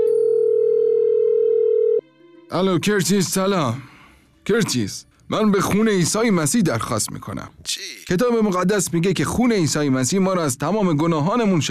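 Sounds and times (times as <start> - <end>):
telephone dial tone while a call is being placed: 0.0 - 2.0
speech: 2.5 - 3.9, 4.5 - 11.6.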